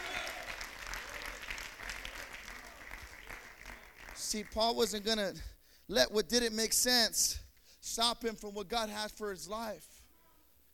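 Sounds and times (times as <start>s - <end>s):
congregation clapping hands: 0.0s - 5.3s
speech: 4.3s - 9.9s.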